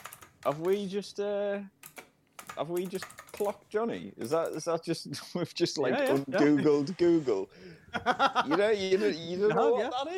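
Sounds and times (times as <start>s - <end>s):
typing on computer keyboard: 0.0s - 0.9s, 1.8s - 3.6s
speech: 0.4s - 1.8s, 2.6s - 10.1s
laughter: 6.0s - 10.1s.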